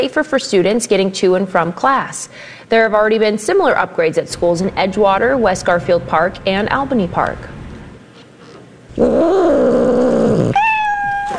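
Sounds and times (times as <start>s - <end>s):
speech: 0.0s - 7.6s, 9.0s - 10.0s
cat meowing: 9.0s - 11.3s.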